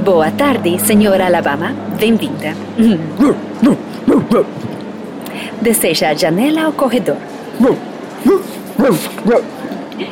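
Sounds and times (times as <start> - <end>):
speech: 0.0 - 4.8, 5.4 - 10.1
quiet hum: 0.0 - 10.1
dog barking at an airline gate: 7.6 - 9.6.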